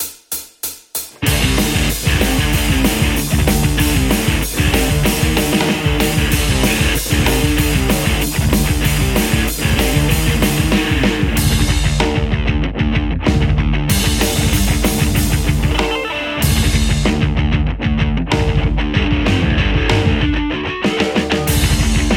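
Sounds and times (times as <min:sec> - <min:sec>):
metal electric guitar through an amplifier: 0:01.1 - 0:22.1.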